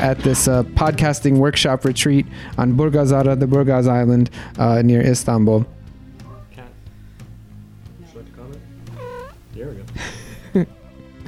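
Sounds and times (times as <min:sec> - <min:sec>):
speech: 0:00.0 - 0:05.8, 0:10.6 - 0:10.8
cat meowing indoors in a studio: 0:08.8 - 0:09.6.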